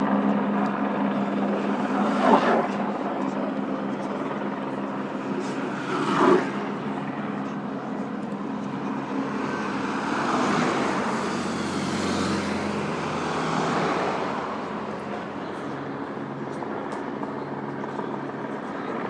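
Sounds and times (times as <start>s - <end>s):
tandem time trial bike noise: 0.0s - 19.0s.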